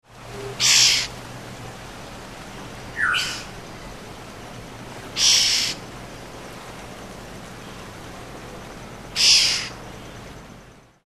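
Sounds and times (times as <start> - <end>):
black-hooded oriole vocalizing: 0.3 - 1.1, 2.9 - 3.9, 5.1 - 5.9, 9.1 - 10.3.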